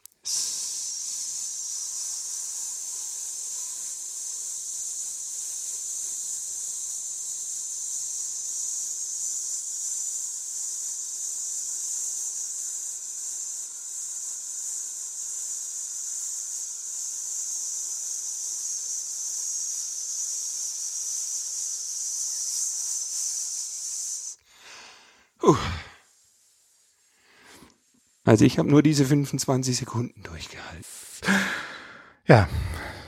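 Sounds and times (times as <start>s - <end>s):
person exhaling slowly on a long hissing S: 0.2s - 4.4s, 23.2s - 28.2s, 31.1s - 33.0s
quick breath: 24.4s - 26.1s, 31.2s - 33.0s
speech: 28.3s - 30.8s, 32.3s - 32.7s.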